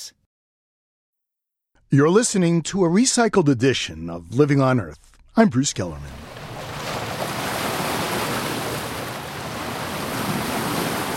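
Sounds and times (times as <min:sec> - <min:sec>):
speech: 0:01.9 - 0:06.3
sea waves: 0:05.9 - 0:11.1.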